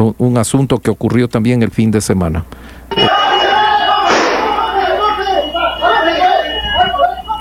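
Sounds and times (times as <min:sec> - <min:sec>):
speech: 0:00.0 - 0:03.2
people shouting during a shootout: 0:03.0 - 0:06.5
gunshot bang during a shootout: 0:04.1 - 0:05.0.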